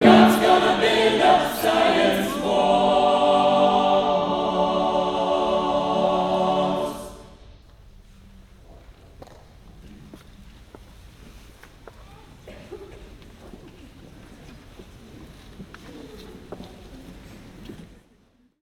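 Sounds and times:
singing in a church: 0:00.0 - 0:07.6.

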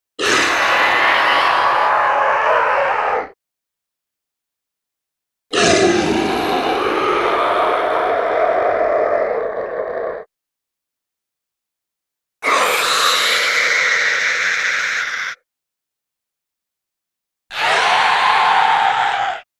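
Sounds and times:
sea serpent screams: 0:00.2 - 0:03.4, 0:05.5 - 0:10.3, 0:12.4 - 0:15.4, 0:17.5 - 0:19.5.

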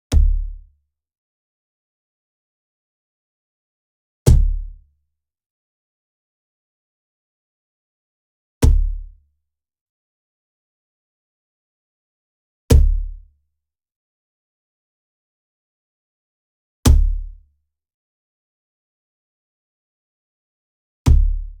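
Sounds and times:
near wooden cajon bass slap hit: 0:00.1 - 0:00.6, 0:04.3 - 0:04.7, 0:08.6 - 0:09.0, 0:16.9 - 0:17.2, 0:21.1 - 0:21.4.

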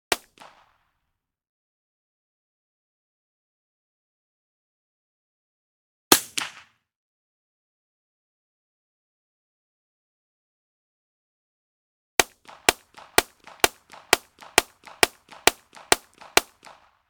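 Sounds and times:
.22 pistol blast, rapid fire: 0:00.1 - 0:00.8, 0:12.2 - 0:17.0.

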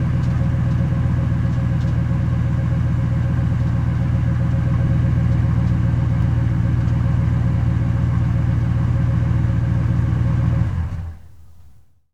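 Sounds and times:
Expedition truck engine idling and shutting off: 0:00.0 - 0:11.8.

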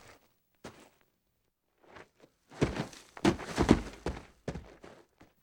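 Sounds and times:
footsteps on gravel: 0:02.6 - 0:04.9.

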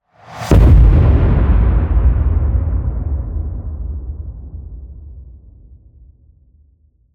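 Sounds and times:
cinematic fire hit: 0:00.4 - 0:05.2.

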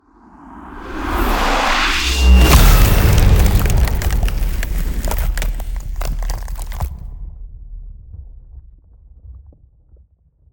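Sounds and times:
ice spell ultimate effect: 0:02.2 - 0:06.9.

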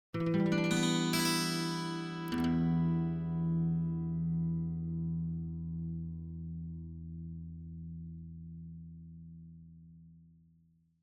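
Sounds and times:
clean acoustic guitar arpeggio in E minor: 0:00.1 - 0:07.1.

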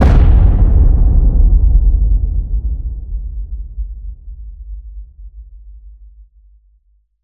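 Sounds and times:
designed cinematic boom hits: 0:00.0 - 0:05.0.

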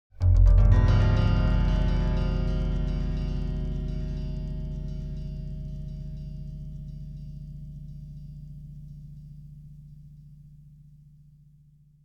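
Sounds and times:
arpeggiated broken chord on pitched piano: 0:00.2 - 0:08.5.

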